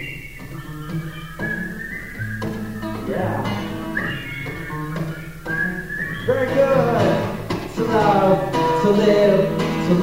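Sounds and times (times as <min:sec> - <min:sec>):
person whistling a tune: 0:00.0 - 0:07.5
speech: 0:06.3 - 0:07.0, 0:07.8 - 0:10.0.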